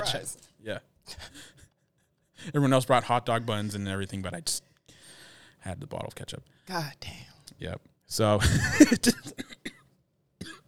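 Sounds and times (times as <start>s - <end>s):
speech: 0.0s - 1.6s, 2.4s - 4.7s, 5.6s - 9.6s
cough clearing phlegm from the throat: 8.7s - 10.6s.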